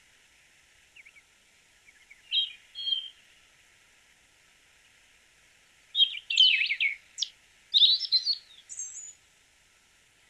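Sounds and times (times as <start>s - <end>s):
slaty thrush song with squeaky jumbled twittering: 1.8s - 3.2s, 5.9s - 9.2s.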